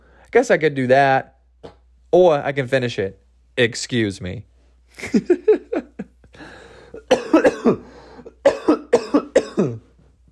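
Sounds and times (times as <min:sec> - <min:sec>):
raspy inhale: 0:00.0 - 0:00.3, 0:06.3 - 0:07.0, 0:07.8 - 0:08.4
speech: 0:00.3 - 0:05.6, 0:07.7 - 0:07.9
loud harsh coughing fit: 0:01.6 - 0:01.9, 0:05.0 - 0:10.0.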